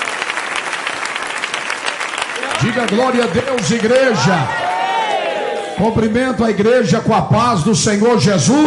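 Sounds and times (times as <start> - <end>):
church congregation applauding at a service: 0.0 - 6.1
speech: 2.6 - 4.6, 5.8 - 8.6.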